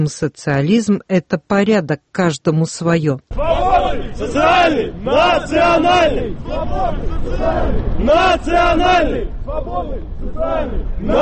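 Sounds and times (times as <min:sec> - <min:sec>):
speech: 0:00.0 - 0:11.2
crowd of young men chanting a slogan in unison at a street march: 0:03.3 - 0:11.2.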